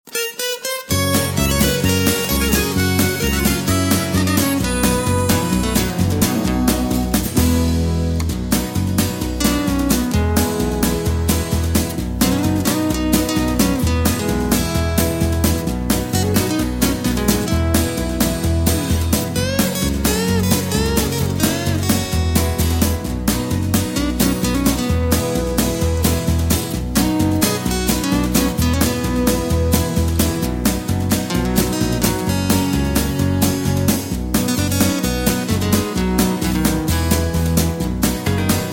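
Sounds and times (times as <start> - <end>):
song without backing vocals: 0.1 - 38.7.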